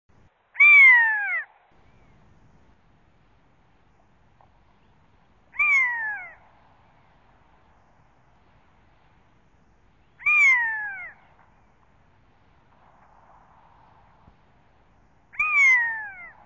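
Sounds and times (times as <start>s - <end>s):
buzzard calling: 4.8s - 8.4s, 10.0s - 12.0s, 15.3s - 16.4s.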